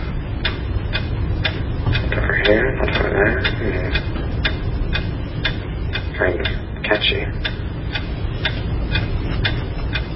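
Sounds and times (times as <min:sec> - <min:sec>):
clock-like ticking: 0:00.0 - 0:10.1
speech: 0:02.5 - 0:04.2, 0:06.2 - 0:07.5.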